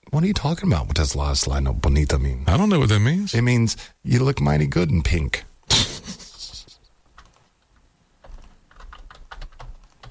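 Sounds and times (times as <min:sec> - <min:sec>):
speech: 0:00.1 - 0:05.5
typing on a computer keyboard: 0:07.2 - 0:07.5, 0:08.2 - 0:10.0.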